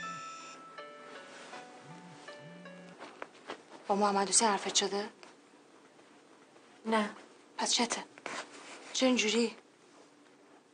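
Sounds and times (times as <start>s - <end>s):
mobile phone ringing with a bright electronic melody: 0.0s - 3.0s
faint hiss of noise: 0.0s - 10.7s
speech: 3.9s - 5.2s, 6.8s - 8.1s, 9.0s - 9.6s.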